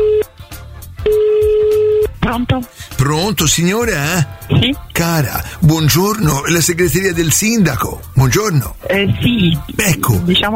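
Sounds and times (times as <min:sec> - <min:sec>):
telephone line tone on a call placed to a mayor's secretariat: 0:00.0 - 0:00.3
faint rhythmic sound: 0:00.0 - 0:10.5
speech: 0:02.3 - 0:10.5.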